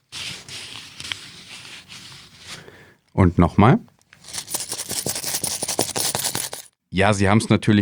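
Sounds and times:
crinkling and rustling of paper banknotes: 0.0 - 2.7, 4.2 - 6.7
speech: 3.2 - 3.9, 7.0 - 7.7
coins clinking while being shuffled together: 4.2 - 6.7.

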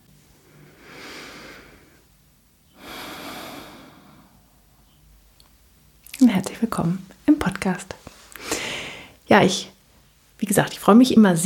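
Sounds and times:
deep breath: 0.4 - 4.7, 8.4 - 9.2
speech: 6.2 - 8.2, 9.3 - 9.7, 10.4 - 11.4.

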